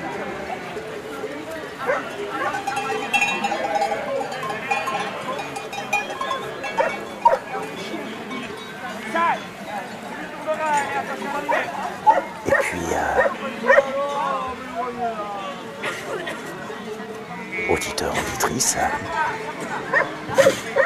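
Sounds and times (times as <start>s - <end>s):
steady low outdoor murmur in a mountain setting: 0.0s - 20.8s
bell on a grazing Mérens horse clinking: 2.1s - 8.8s
speech: 17.7s - 20.5s.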